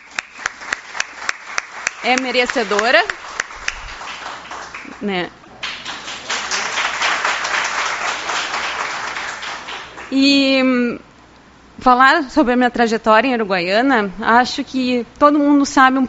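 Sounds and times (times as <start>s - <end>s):
audience applause: 0.0s - 10.2s
speech: 2.0s - 3.2s, 5.0s - 5.4s, 10.1s - 11.1s, 11.8s - 16.0s.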